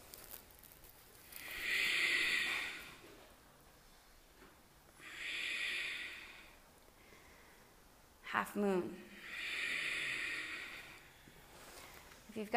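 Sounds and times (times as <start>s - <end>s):
ujjayi breathing through the nose during a power flow yoga class: 1.3s - 3.0s, 5.0s - 7.7s, 9.1s - 12.1s
speech: 8.4s - 9.0s, 12.4s - 12.5s.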